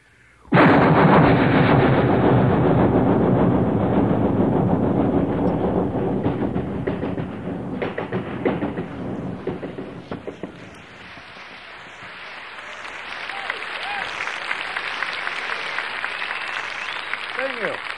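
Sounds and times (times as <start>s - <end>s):
rattling clatter of moving train: 0.6s - 12.2s
rhythmic clacks of moving train: 0.6s - 17.9s
long moving train rumbling: 1.2s - 17.9s.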